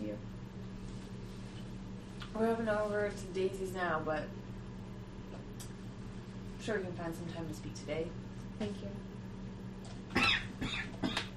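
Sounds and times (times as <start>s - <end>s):
steady low hum: 0.0s - 11.3s
speech: 0.1s - 0.4s, 2.3s - 4.5s, 6.6s - 9.2s
person coughing: 10.1s - 11.3s.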